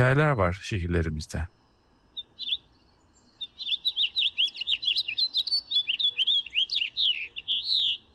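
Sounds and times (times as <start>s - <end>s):
speech: 0.0s - 1.6s
colorful city bird chirping: 0.0s - 8.1s.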